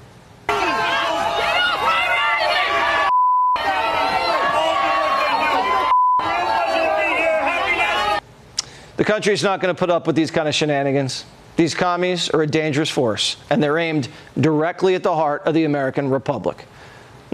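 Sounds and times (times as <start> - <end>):
large crowd booing and jeering a speaker off stage: 0.5 - 8.2
speech: 9.1 - 16.7.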